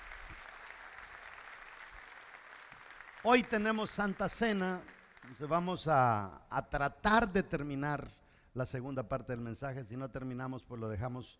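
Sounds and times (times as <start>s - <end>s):
audience applauding: 0.0s - 5.7s
speech: 3.2s - 11.3s.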